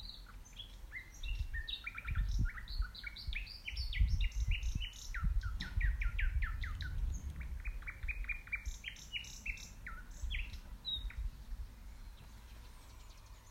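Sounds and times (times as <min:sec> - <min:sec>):
common nightingale Luscinia megarhynchos singing: 0:00.0 - 0:13.4
low background rumble: 0:04.1 - 0:13.4.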